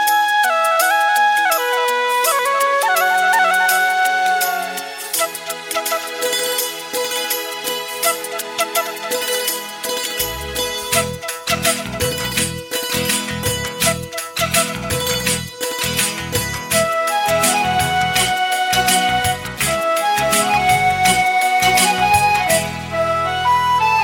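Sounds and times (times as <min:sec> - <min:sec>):
sweet flute: 0:00.0 - 0:24.0.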